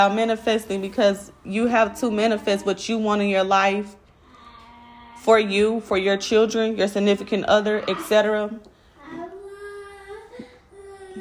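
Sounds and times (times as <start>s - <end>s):
speech: 0.0s - 4.0s, 5.2s - 9.2s
child making wordless vocal tones as vocal stimming: 9.0s - 11.1s.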